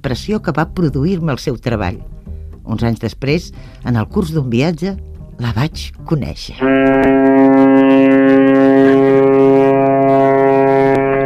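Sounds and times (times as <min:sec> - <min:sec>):
speech: 0:00.0 - 0:07.3
horn of a ship bound for Barcelona sounding as it stops at Montevideo: 0:06.6 - 0:11.2.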